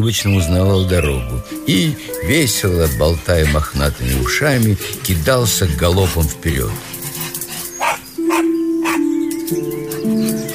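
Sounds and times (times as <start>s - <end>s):
speech: 0.0s - 7.0s
sustained musical tones: 0.0s - 10.5s
dog barking in quick yaps: 7.8s - 9.0s.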